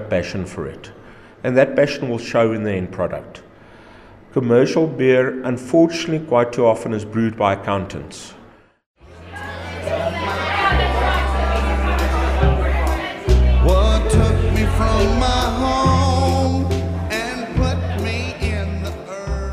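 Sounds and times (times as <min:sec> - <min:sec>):
speech: 0:00.1 - 0:03.4, 0:04.3 - 0:08.4
busy crowd chattering in a beer yard: 0:09.0 - 0:19.2
bass-heavy music: 0:10.3 - 0:19.5.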